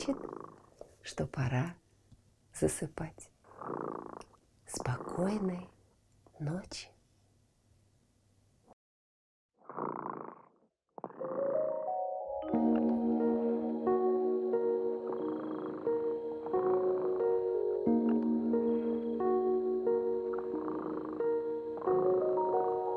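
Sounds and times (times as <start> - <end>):
cat purring in rhythmic rumbling pulses: 0.0 - 0.9, 3.4 - 5.7, 9.6 - 11.8, 14.2 - 22.9
speech: 0.0 - 1.8, 2.6 - 5.7, 6.4 - 6.9
gentle sustained melodic tune: 11.2 - 22.9.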